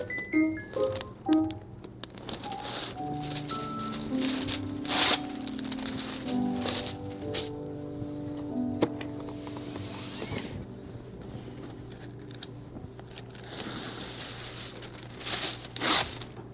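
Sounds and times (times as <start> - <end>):
soft steady tonal hum: 0.0 - 16.5
wax paper crinkling and rustling: 0.7 - 7.6, 9.0 - 16.5
wax paper tearing: 2.0 - 7.6, 13.1 - 16.5.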